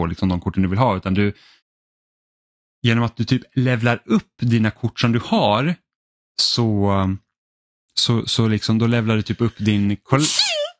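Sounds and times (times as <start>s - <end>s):
speech: 0.0s - 1.6s, 2.8s - 5.8s, 6.4s - 7.2s, 8.0s - 10.6s
sharp breathy sneeze: 10.2s - 10.7s.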